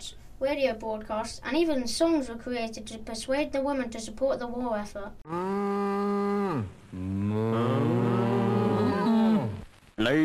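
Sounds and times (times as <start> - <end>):
speech: 0.4 - 8.0, 10.0 - 10.2
cow mooing: 5.3 - 9.6.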